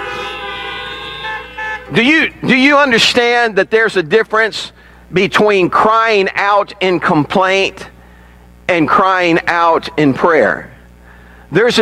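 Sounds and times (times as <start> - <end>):
several car horns honking: 0.0 - 3.2
speech: 1.9 - 7.9, 8.7 - 10.7, 11.5 - 11.8.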